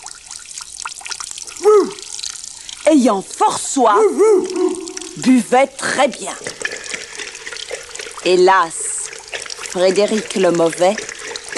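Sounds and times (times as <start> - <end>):
fountain water drip plop: 0.0 - 11.5
speech: 2.9 - 6.6, 8.2 - 8.8, 9.7 - 11.5.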